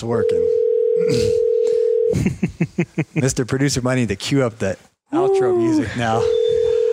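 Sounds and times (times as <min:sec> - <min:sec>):
speech: 0:00.0 - 0:06.4
telephone ring tone buzzing: 0:00.2 - 0:02.1, 0:06.3 - 0:06.9.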